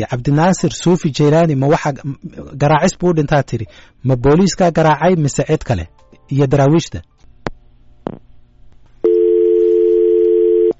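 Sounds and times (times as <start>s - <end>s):
speech: 0.0s - 7.1s
telephone line tone after a call is cut off: 9.0s - 10.7s
telephone line clicks after a call is cut off: 9.1s - 10.7s.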